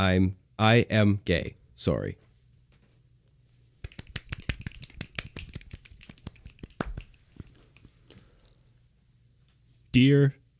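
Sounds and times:
speech: 0.0s - 2.2s, 10.0s - 10.4s
sharp finger snaps: 3.8s - 8.6s.

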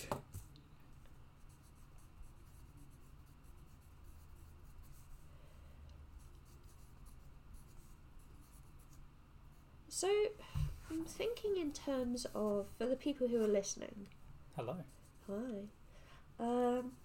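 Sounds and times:
pencil writing on a character sheet paper: 1.4s - 5.3s, 6.2s - 9.0s
speech: 9.9s - 15.8s, 16.4s - 17.0s.

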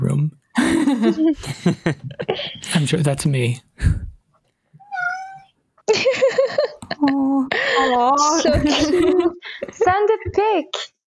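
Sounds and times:
speech: 0.1s - 4.0s, 7.0s - 10.9s
cat meowing insistently with drawn-out wailing meows: 4.8s - 5.5s.

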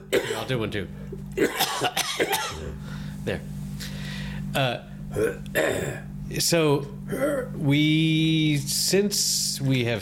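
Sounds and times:
dry coughs: 0.0s - 0.5s, 1.4s - 2.8s, 5.1s - 6.1s
speech: 0.4s - 3.6s, 4.5s - 9.9s.

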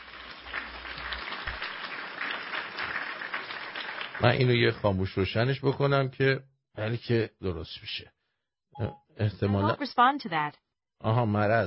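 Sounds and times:
applause sound effect: 0.0s - 5.2s
speech: 4.2s - 8.2s, 8.8s - 11.6s.

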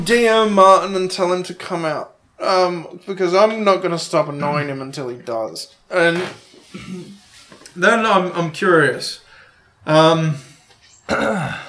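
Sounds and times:
speech: 0.0s - 7.2s, 7.8s - 9.2s, 9.8s - 10.5s, 11.1s - 11.6s
cough covered with hands: 6.7s - 7.2s, 11.1s - 11.6s.

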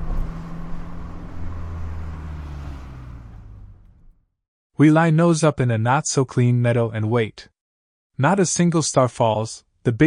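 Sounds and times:
car engine humming as the vehicle slows and stops: 0.0s - 4.2s
speech: 4.8s - 7.5s, 8.2s - 10.0s.

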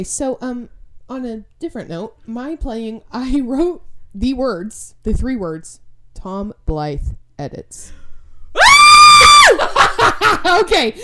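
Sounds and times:
speech: 0.0s - 8.0s, 9.5s - 11.0s
person screaming excitedly: 8.6s - 9.7s
short breathy bursts of giddy laughter: 9.4s - 10.6s.

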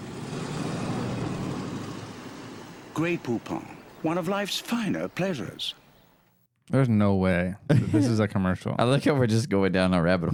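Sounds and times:
car pulling away with engine and road rumble: 0.0s - 4.5s
speech: 3.0s - 5.8s, 6.7s - 10.3s.

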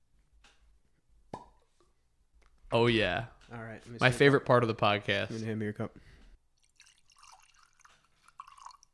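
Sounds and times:
whiskey bottle popping open: 1.3s - 1.6s
speech: 2.7s - 6.1s.

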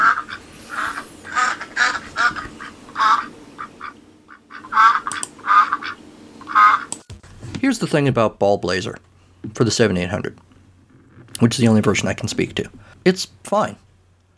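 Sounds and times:
duck quacking: 0.0s - 6.9s
speech: 7.7s - 10.5s, 11.4s - 13.8s.

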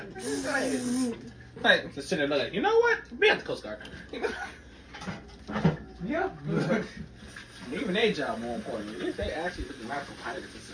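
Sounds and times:
liquid spraying onto an engine: 0.2s - 1.1s
speech: 0.4s - 7.1s, 7.7s - 10.7s.

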